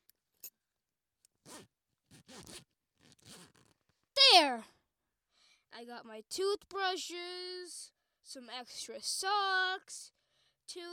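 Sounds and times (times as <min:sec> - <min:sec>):
zipper pulled along a large suitcase: 0:01.4 - 0:03.8
speech: 0:04.4 - 0:04.7, 0:05.8 - 0:10.9.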